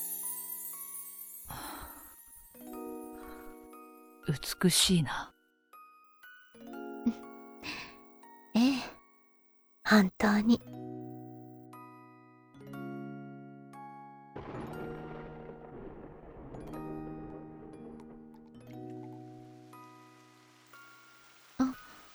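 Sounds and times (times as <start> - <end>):
sustained chiming musical tones: 0.0 - 4.2
speech: 4.2 - 5.3, 7.0 - 7.2, 9.9 - 10.8
steady rain falling: 14.4 - 22.1.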